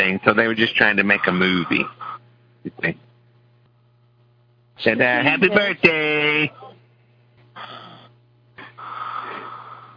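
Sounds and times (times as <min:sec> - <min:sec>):
speech: 0:00.0 - 0:02.0, 0:02.6 - 0:03.0, 0:04.8 - 0:06.7
faint steady low hum: 0:00.0 - 0:09.9
heavy wheezy breathing: 0:07.6 - 0:09.9.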